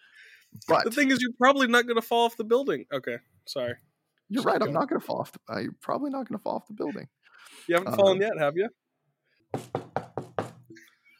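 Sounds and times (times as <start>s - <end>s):
speech: 0.5s - 8.8s, 9.5s - 9.8s
knuckles knocking on wood: 9.5s - 10.7s.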